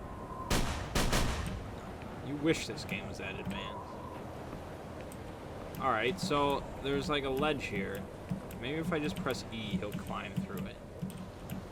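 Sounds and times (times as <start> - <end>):
low hum: 0.0 - 11.7
video game gunshots blowing a rusted lock off: 0.5 - 1.7
speech: 2.3 - 4.0, 5.8 - 10.8.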